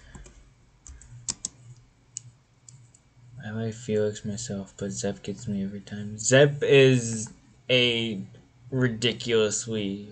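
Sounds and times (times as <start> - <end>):
typing on a computer keyboard: 0.1 - 1.8
speech: 3.5 - 10.1.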